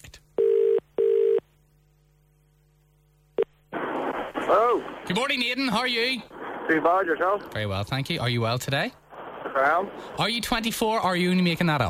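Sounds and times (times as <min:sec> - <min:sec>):
faint low hum: 0:00.0 - 0:11.8
outgoing phone call electronic double-ring tone: 0:00.4 - 0:01.4
speech: 0:04.8 - 0:11.8.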